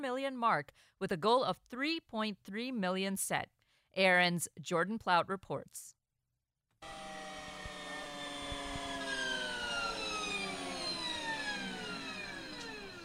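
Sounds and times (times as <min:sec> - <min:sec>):
speech: 0:00.0 - 0:06.0, 0:06.8 - 0:07.2
Harley-Davidson first electric motorcycle prototype revving at a zero-emission vehicle showcase: 0:06.8 - 0:13.0.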